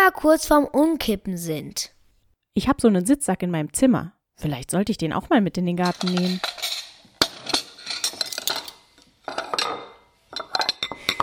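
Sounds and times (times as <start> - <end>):
speech: 0.1 - 2.0, 2.6 - 6.6
dishes and cutlery clattering as they are set down: 5.8 - 11.2.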